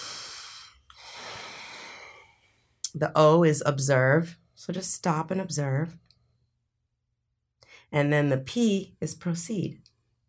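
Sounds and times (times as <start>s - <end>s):
person taking slow deliberate breaths in a meditation exercise: 0.0s - 2.8s
speech: 2.9s - 6.0s, 7.9s - 9.9s.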